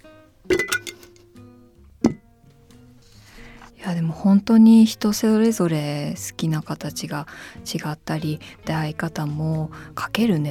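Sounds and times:
coaster clinking against a glass jar: 0.5 - 1.1
speech: 3.8 - 10.4.

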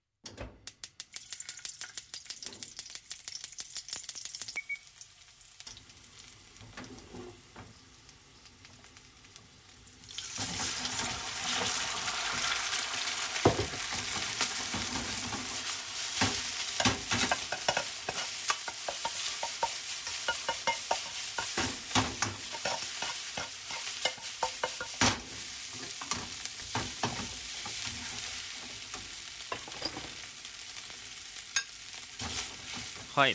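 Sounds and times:
fried rice sizzling in a heavy Chinese wok at home: 0.9 - 33.3
speech: 33.2 - 33.3.

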